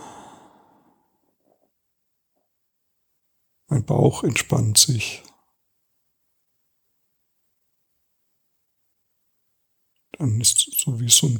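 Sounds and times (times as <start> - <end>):
deep audible exhale: 0.0 - 1.1
soft short breath: 0.0 - 1.1
speech: 3.8 - 5.3, 10.2 - 11.3.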